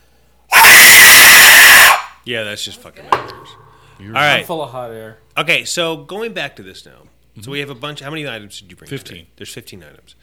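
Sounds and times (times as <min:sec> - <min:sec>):
air blown through a tube toy screaming: 0:00.5 - 0:02.2
speech: 0:02.3 - 0:10.2.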